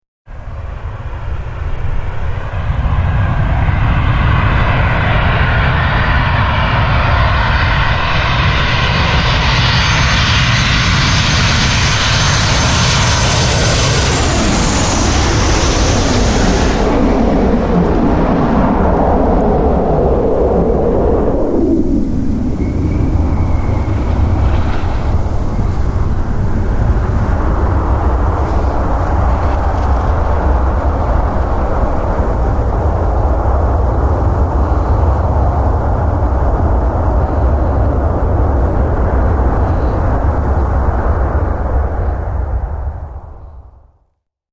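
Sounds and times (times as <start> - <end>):
jet aircraft passing overhead: 0.3 - 43.7.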